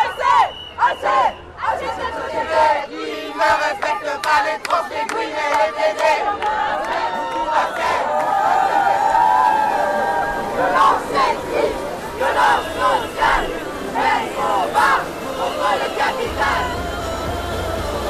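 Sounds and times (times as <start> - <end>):
large outdoor crowd chanting and shouting at a pride march: 0.0 - 18.0.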